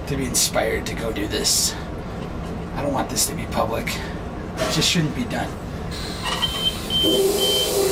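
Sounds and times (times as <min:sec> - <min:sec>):
speech: 0:00.1 - 0:02.0, 0:02.8 - 0:06.4, 0:07.0 - 0:07.9
short high electronic beeps in a train locomotive cab: 0:06.0 - 0:07.8.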